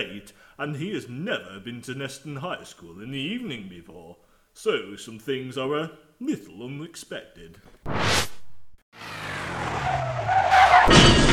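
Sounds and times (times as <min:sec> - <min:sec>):
speech: 0:00.0 - 0:08.2
car engine roaring: 0:09.0 - 0:11.3
car tires squealing while skidding: 0:09.0 - 0:11.3.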